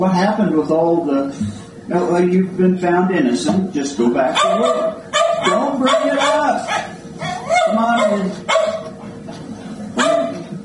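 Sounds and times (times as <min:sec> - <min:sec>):
speech: 0:00.0 - 0:06.9, 0:07.7 - 0:08.5
faint hum: 0:00.0 - 0:10.6
dog giving a sharp loud bark: 0:04.4 - 0:08.9, 0:10.0 - 0:10.4.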